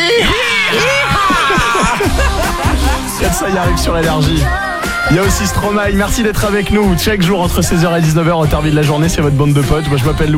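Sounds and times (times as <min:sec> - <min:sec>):
group of people yelling and screaming together: 0:00.0 - 0:03.5
laughter: 0:00.0 - 0:04.5
speech: 0:03.5 - 0:10.3.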